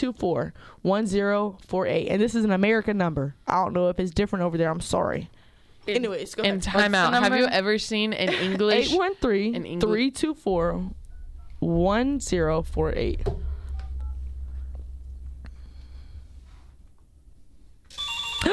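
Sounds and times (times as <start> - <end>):
speech: 0.0 - 11.0, 11.6 - 13.4
low hum: 9.7 - 18.0
telephone ringing: 17.9 - 18.5.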